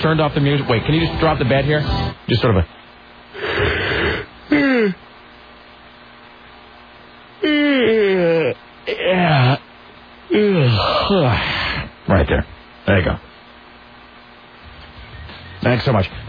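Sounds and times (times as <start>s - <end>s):
speech: 0.0s - 2.8s, 12.2s - 13.3s, 15.6s - 16.2s
long drawn-out yawns: 3.4s - 5.0s, 7.4s - 9.6s, 10.3s - 11.9s.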